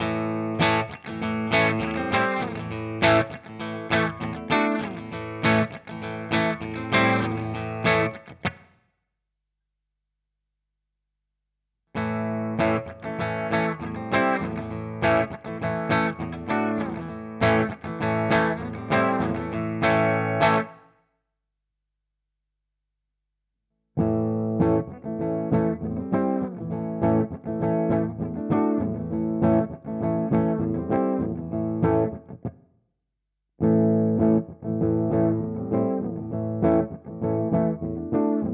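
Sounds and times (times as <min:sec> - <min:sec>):
guitars playing in harmony: 0:00.0 - 0:08.5, 0:12.0 - 0:20.8, 0:24.0 - 0:32.3, 0:33.6 - 0:38.5.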